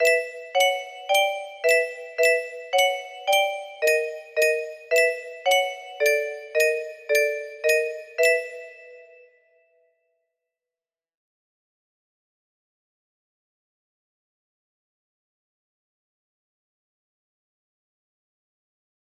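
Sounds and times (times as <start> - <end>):
music box melody: 0.0 - 9.2.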